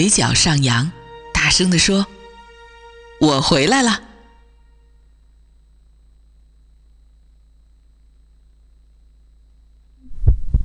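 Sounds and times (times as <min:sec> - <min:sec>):
speech: 0:00.0 - 0:02.2, 0:03.2 - 0:04.0
low faint hum: 0:00.0 - 0:10.6
heartbeat thumps: 0:10.0 - 0:10.6.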